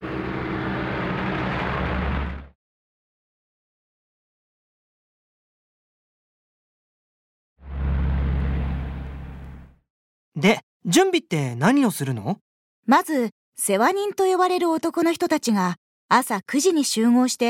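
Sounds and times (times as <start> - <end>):
car passing by with road noise and low hum: 0.0 - 2.5, 7.6 - 9.8
speech: 10.4 - 17.4.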